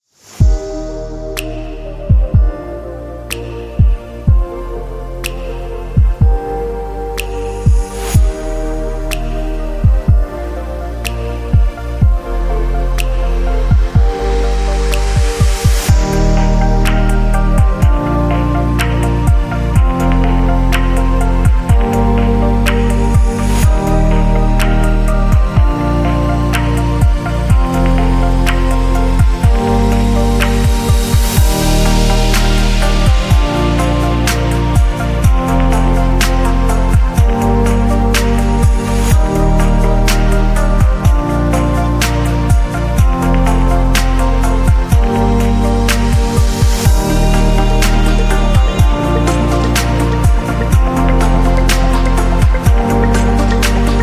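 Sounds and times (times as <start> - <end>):
ambient atmospheric music: 0.2 - 54.0.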